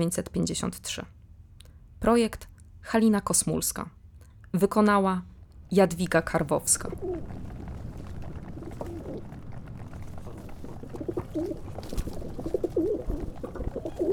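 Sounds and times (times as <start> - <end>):
speech: 0.0 - 1.2, 2.0 - 7.6
steady low rumble of outdoor noise: 0.0 - 14.1
pigeons cooing at a tenement house: 6.9 - 7.4, 8.3 - 14.1.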